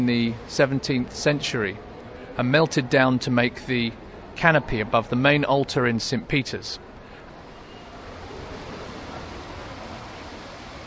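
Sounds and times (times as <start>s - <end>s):
speech: 0.0s - 6.9s
water splashing in large Baroque fountain: 7.3s - 10.8s.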